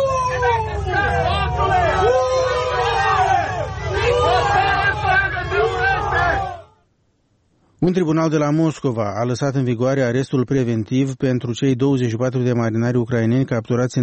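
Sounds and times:
dozens of protesters shouting and booing at a prison gate: 0.0 - 6.8
speech: 7.8 - 14.0.

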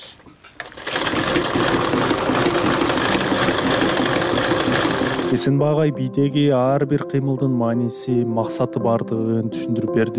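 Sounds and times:
sewing machine stitching a traditional Kyrgyz belt: 0.6 - 5.4
speech: 5.3 - 10.1.

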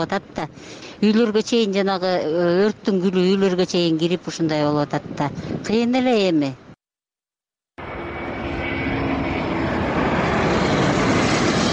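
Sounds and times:
speech: 0.0 - 6.6
firefighting aircraft engine droning during a wildfire near Manavgat, Turkey: 7.8 - 11.7.

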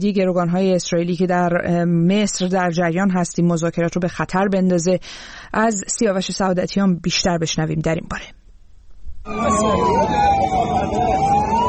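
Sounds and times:
speech: 0.0 - 8.4, 9.2 - 11.0
ambulance siren wailing: 9.3 - 11.6
crowd of voices talking indistinctly: 9.3 - 11.6
traffic rumble: 9.3 - 11.6.

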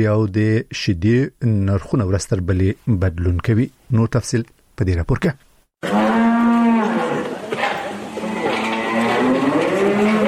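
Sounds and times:
speech: 0.0 - 6.2
cattle mooing on a small dairy cow farm in Kandahar: 5.8 - 10.2.

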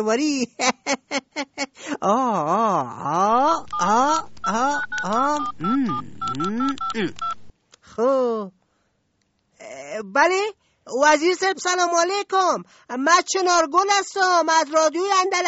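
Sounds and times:
speech: 0.0 - 5.7, 10.2 - 15.4
voiced wavering sound: 3.0 - 7.2
short electronic beeps of a telephone number dialled on a keypad: 3.3 - 7.5.

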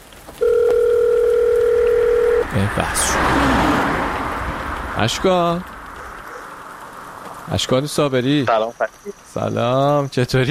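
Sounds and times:
telephone tone while placing a call: 0.4 - 2.5
speech: 2.6 - 3.7, 5.0 - 5.7, 7.5 - 10.4.

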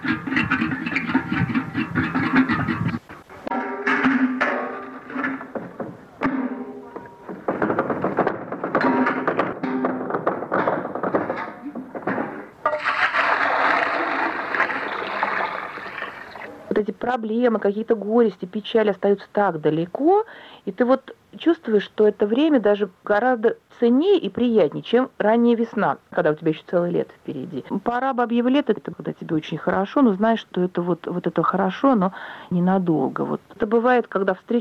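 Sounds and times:
metal bucket knocking at a well: 0.0 - 16.5
water sloshing and pouring from a bucket at a well: 12.6 - 16.7
speech: 17.2 - 34.5.

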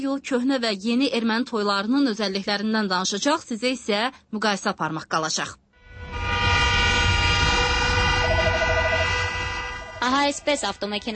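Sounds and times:
speech: 0.0 - 5.6, 10.0 - 11.1
car horns honking for a wedding procession: 6.1 - 10.8.

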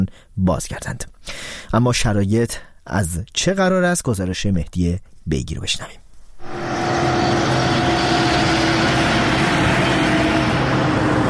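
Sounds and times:
speech: 0.0 - 6.0
faint tonal whine: 6.4 - 11.2
heavy trucks idling: 6.6 - 11.2.

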